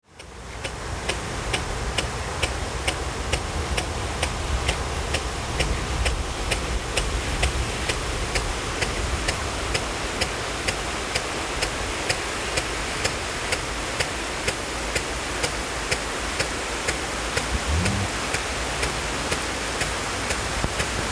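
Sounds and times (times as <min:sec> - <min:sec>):
watering maize in summer in Beynac: 0:00.1 - 0:21.1.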